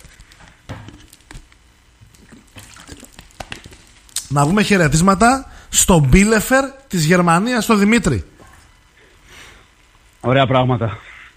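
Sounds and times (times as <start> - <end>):
sips and swallows of water: 2.0 - 3.3
speech: 4.3 - 8.3, 10.3 - 11.1.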